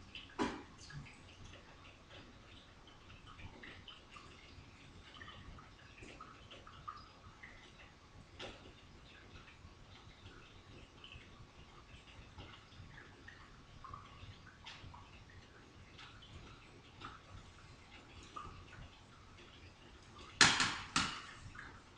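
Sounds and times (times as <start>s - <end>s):
coffee brewing and bubbling: 0.0s - 21.9s.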